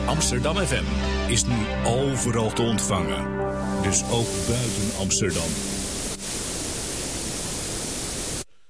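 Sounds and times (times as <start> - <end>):
speech: 0.1 - 5.8
radio static hiss: 3.6 - 8.5.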